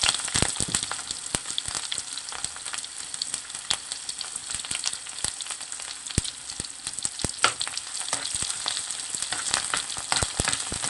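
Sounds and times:
sharp pops and crackles of mustard seeds in hot oil: 0.0s - 1.4s, 6.1s - 10.8s
onion and mustard seeds sautéing in hot oil in a pan: 0.0s - 10.8s.

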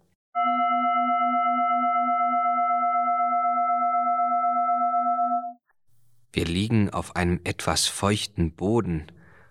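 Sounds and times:
singing bowl being struck: 0.4s - 5.6s
speech: 6.3s - 9.2s.

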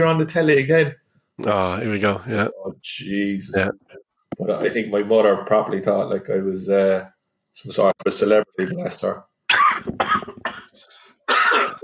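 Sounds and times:
speech: 0.0s - 10.3s
harsh choking coughing fit: 9.5s - 11.8s.

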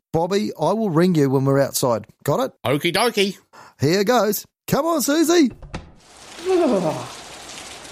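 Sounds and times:
speech: 0.1s - 5.8s, 6.4s - 7.2s
rain falling outside on a hard surface: 6.0s - 7.9s.

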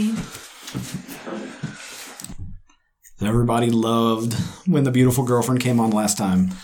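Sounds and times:
chair scraping across a floor: 0.0s - 2.6s
speech: 3.2s - 6.6s.

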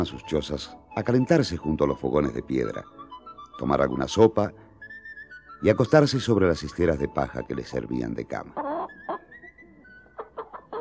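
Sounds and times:
speech: 0.0s - 3.0s, 3.6s - 4.6s, 5.6s - 8.7s
hen clucking: 8.5s - 10.7s.

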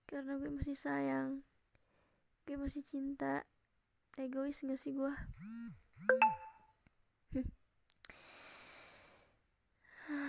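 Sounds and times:
speech: 0.2s - 1.5s, 2.5s - 3.5s, 4.2s - 6.4s, 7.3s - 7.6s
electronic phone notification chime: 6.1s - 6.6s.

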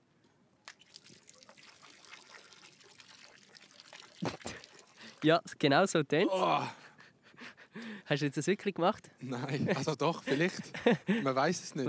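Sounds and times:
small drips: 0.2s - 5.6s
urine stream splashing into water: 0.7s - 5.2s
speech: 5.2s - 6.8s, 8.1s - 11.8s
laughter: 9.2s - 11.8s.

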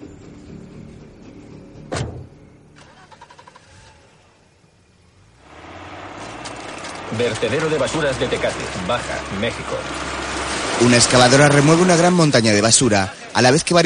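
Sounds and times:
car engine hum as a car drives away: 0.0s - 13.4s
thud: 1.9s - 2.4s
speech: 7.2s - 10.2s, 10.8s - 13.8s.

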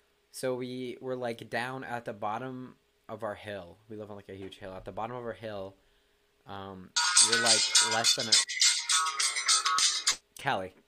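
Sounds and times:
speech: 0.4s - 5.8s, 6.4s - 8.6s, 10.4s - 10.8s
mobile phone ringtone for an incoming call, bright repeating electronic melody: 7.0s - 10.2s.

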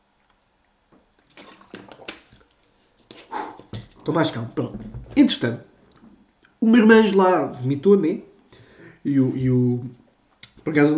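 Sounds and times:
person sipping water with wet slurps and gulps: 1.2s - 4.0s
speech: 4.0s - 5.8s, 6.6s - 10.0s, 10.6s - 10.9s.

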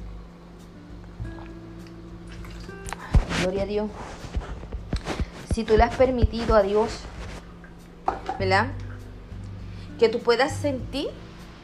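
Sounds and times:
low hum: 0.0s - 11.6s
water dripping: 1.0s - 3.0s, 7.5s - 9.6s
speech: 3.4s - 4.3s, 5.6s - 7.1s, 8.4s - 8.8s, 10.0s - 11.2s.

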